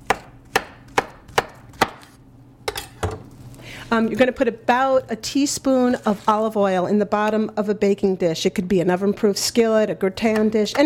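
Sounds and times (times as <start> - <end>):
knife chopping bananas into bite-sized pieces: 0.0 - 2.2
speech: 3.9 - 10.8.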